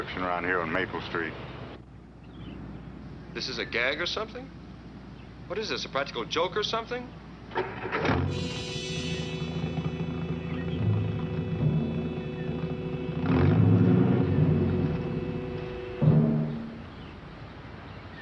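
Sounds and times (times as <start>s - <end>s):
speech: 0.0s - 1.6s, 3.4s - 4.6s, 5.5s - 8.8s
car engine starting, idling and revving: 7.5s - 17.3s.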